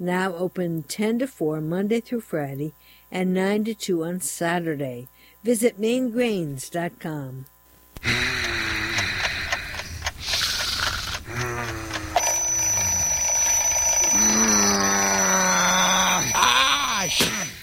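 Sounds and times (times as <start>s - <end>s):
speech: 0.0s - 8.4s
person woken by alarm groaning and moaning sleepily: 8.0s - 13.2s, 14.0s - 17.6s
alarm clock bell ringing: 11.9s - 16.4s.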